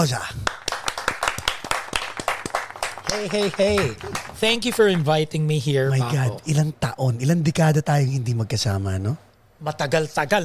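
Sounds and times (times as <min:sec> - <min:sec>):
speech: 0:00.0 - 0:00.4, 0:03.1 - 0:10.4
applause: 0:00.4 - 0:05.1.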